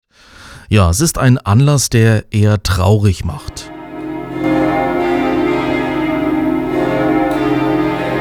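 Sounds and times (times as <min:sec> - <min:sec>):
speech: 0:00.7 - 0:03.6
memorial church bells ringing in a full peal: 0:03.4 - 0:08.2.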